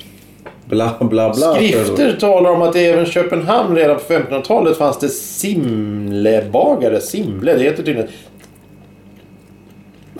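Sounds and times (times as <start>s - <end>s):
low hum: 0.0s - 10.1s
speech: 0.7s - 8.3s
man noisy chewing while eating: 4.6s - 10.1s
man wet lip smacking while eating: 8.2s - 10.1s.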